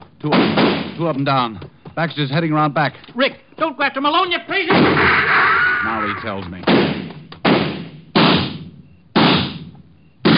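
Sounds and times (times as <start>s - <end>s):
gunshots in a radio drama: 0.2s - 1.2s, 4.6s - 10.3s
speech: 0.2s - 6.9s.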